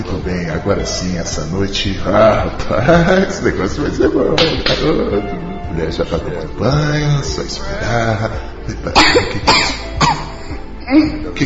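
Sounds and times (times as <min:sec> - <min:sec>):
speech: 0:00.0 - 0:10.1, 0:10.9 - 0:11.4
young girl coughing at night: 0:08.9 - 0:10.4.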